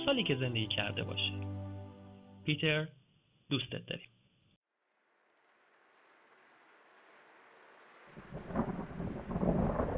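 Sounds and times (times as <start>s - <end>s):
speech: 0.1s - 1.5s, 2.4s - 4.1s
steady rain: 4.8s - 9.9s
low rumble of thunder: 7.9s - 9.9s.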